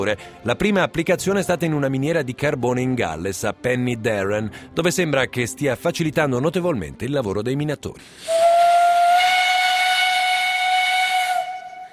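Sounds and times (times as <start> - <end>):
speech: 0.0 - 8.7
steam locomotive hissing: 8.0 - 11.7
steam locomotive whistle as pressure valve opens: 8.2 - 11.9.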